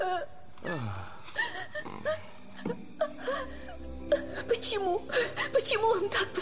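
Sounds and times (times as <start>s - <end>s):
woman sobbing and whimpering: 0.0s - 6.3s
speech: 4.6s - 6.3s.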